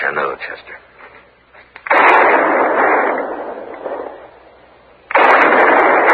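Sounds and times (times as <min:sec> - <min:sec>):
gunshots fired as a signal for help: 0:01.8 - 0:06.1.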